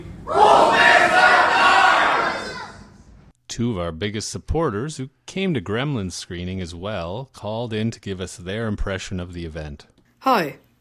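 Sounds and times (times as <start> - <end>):
movie theater audience shouting a group cheer at a matinee screening: 0.3 - 2.9
speech: 3.6 - 10.7.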